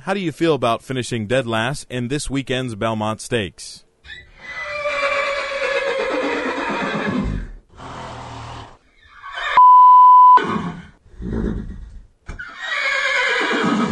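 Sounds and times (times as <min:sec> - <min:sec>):
speech: 0:00.0 - 0:04.6
horse whinnying and neighing: 0:04.0 - 0:07.6, 0:08.4 - 0:09.6, 0:10.4 - 0:13.9
steady electronic beep: 0:09.6 - 0:10.4.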